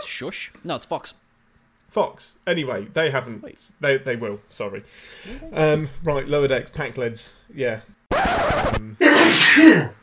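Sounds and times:
speech: 0.2 - 1.2, 1.9 - 10.0
loud sneeze: 9.0 - 10.0.

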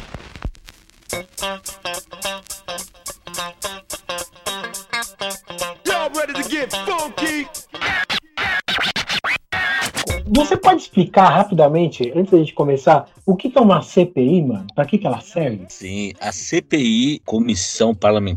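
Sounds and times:
DJ turntable scratching: 0.0 - 4.8, 5.5 - 12.6
steady beat: 1.1 - 8.3, 10.0 - 16.5
speech: 10.4 - 18.3.

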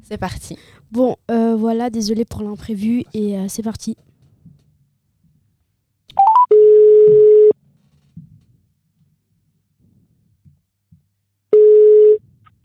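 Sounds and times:
speech: 0.0 - 4.1
steady low telephone tone of an outgoing call: 6.1 - 7.6, 11.5 - 12.2
telephone dialing beeps of an outgoing call: 6.2 - 7.5.

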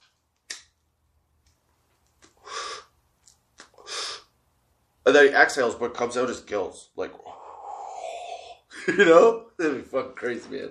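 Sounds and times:
voice imitating a deep inhale: 2.4 - 2.9, 7.2 - 8.7
speech: 5.1 - 7.4, 8.8 - 10.6.

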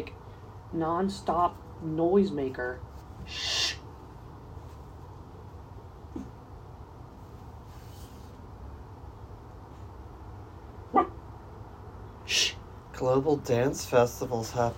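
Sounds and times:
speech: 0.0 - 3.6, 13.0 - 14.7
dog barking: 10.9 - 11.2.

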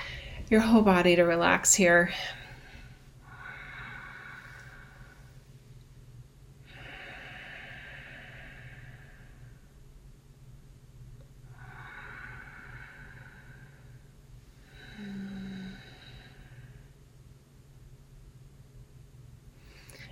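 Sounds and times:
low hum: 0.0 - 20.1
speech: 0.5 - 2.4
slow deep breathing in and out through nose: 2.3 - 5.4, 6.6 - 9.8, 11.5 - 16.9.

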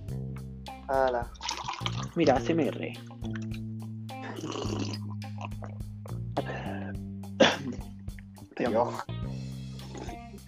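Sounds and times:
speech: 0.9 - 3.4, 4.4 - 7.1, 8.6 - 9.2
person drinking water with sloshing and gulping: 1.2 - 2.2, 3.1 - 5.9, 9.7 - 10.4.

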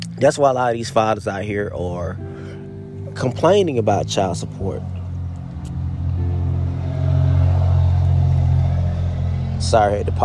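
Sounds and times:
speech: 0.2 - 2.6, 3.2 - 5.0, 9.6 - 10.2
truck with loud muffler revving past: 3.1 - 10.2.

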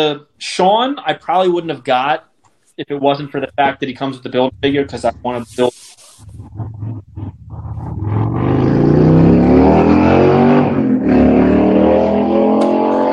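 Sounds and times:
speech: 0.0 - 5.9
motorcycle engine revving outside a window: 3.4 - 13.1.

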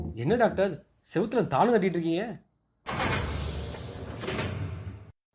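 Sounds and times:
speech: 0.2 - 2.5
heavy shelf sliding aside like a door: 2.9 - 5.1.

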